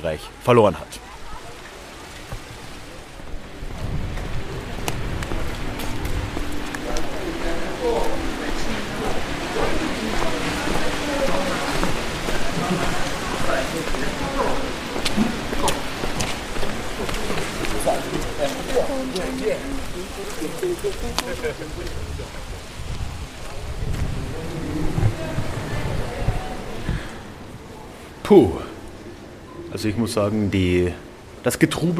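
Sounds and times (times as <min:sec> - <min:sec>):
speech: 0:00.0 - 0:01.1, 0:20.6 - 0:22.4, 0:28.3 - 0:28.6, 0:29.8 - 0:31.9
steady rain falling on the Getreidegasse in Salzburg, Austria: 0:00.0 - 0:31.9
faint murmuring voices of passersby: 0:01.0 - 0:31.2.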